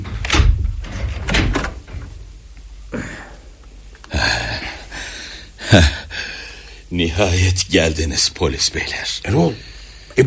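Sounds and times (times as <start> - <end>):
door creaking and knocking as it is worked open: 0.0 - 2.2
speech: 5.7 - 6.0, 6.9 - 10.2.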